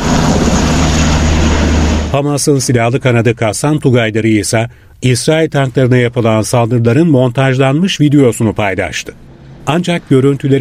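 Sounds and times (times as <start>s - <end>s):
deep pulsing helicopter rotor thump: 0.0s - 2.2s
loud steady helicopter engine roar: 0.0s - 2.2s, 9.2s - 10.5s
speech: 2.1s - 10.5s.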